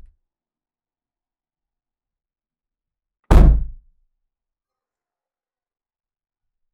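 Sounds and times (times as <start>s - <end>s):
car door slamming: 3.3s - 3.7s.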